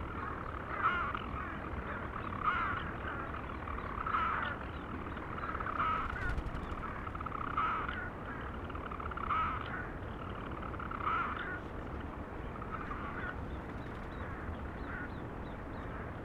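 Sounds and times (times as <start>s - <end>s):
purring flight: 0.1s - 9.1s, 9.7s - 16.2s.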